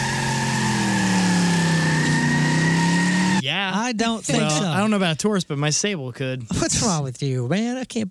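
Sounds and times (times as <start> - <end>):
loud Camaro car engine revving: 0.0 - 3.4
speech: 3.9 - 8.0.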